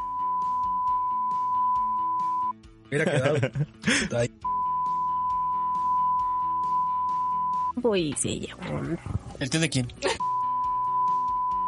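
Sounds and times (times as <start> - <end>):
high-pitched censor bleep tone: 0.0 - 2.5, 4.4 - 7.8, 10.2 - 11.6
speech: 2.9 - 4.5, 7.8 - 10.2
laughter: 3.0 - 4.1.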